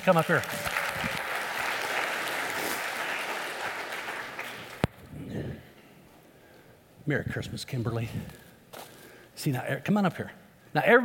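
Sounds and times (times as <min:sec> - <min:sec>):
speech: 0:00.0 - 0:01.1, 0:07.1 - 0:08.4, 0:09.4 - 0:11.0
audience applauding for a volunteer: 0:00.0 - 0:04.9.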